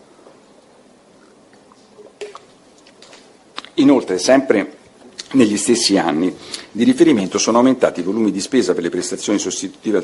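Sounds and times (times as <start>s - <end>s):
low hiss: 0.0s - 10.0s
person sipping water: 1.2s - 3.0s
speech: 3.8s - 10.0s.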